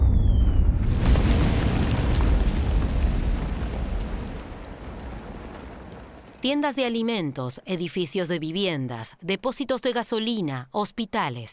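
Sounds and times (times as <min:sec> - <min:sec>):
German artillery shelling a city: 0:00.0 - 0:06.5
speech: 0:06.4 - 0:11.5.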